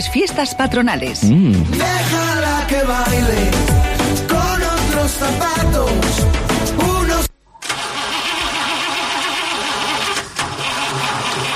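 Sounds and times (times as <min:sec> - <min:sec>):
speech: 0:00.0 - 0:04.3, 0:05.1 - 0:06.9
music: 0:00.0 - 0:07.3
car engine cranking but failing to start: 0:07.6 - 0:11.5.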